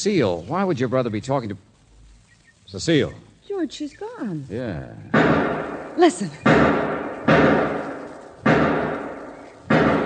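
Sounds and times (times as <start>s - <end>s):
speech: 0.0s - 1.7s, 2.7s - 7.0s
gunshots near some sheds: 5.1s - 10.0s.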